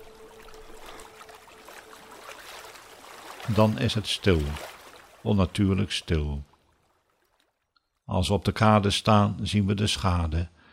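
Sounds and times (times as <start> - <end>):
water splashing and lapping around a small boat: 0.0 - 8.0
speech: 3.5 - 6.5, 8.1 - 10.6.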